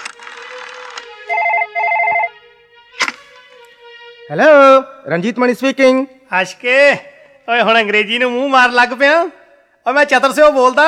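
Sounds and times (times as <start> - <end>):
telephone ringing with trilling ring bursts after a call is dialed: 0.0 - 2.9
buzzy tone: 0.0 - 6.0
sharp click: 3.0 - 3.5
speech: 4.3 - 10.8.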